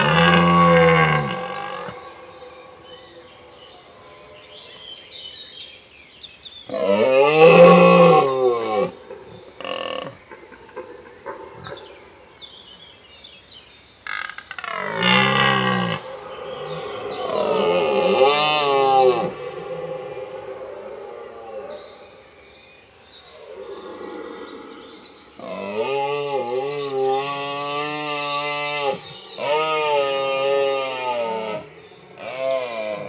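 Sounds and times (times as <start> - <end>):
red deer stag roaring during the rut: 0.0 - 3.7, 14.6 - 22.3, 23.3 - 33.0
faint forest sounds: 0.0 - 33.0.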